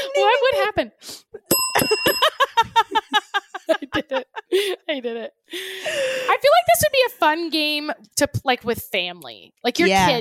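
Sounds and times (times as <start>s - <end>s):
speech: 0.2s - 2.3s, 4.1s - 10.1s
tabletop bell ringing: 1.5s - 2.7s
people laughing: 2.0s - 5.1s.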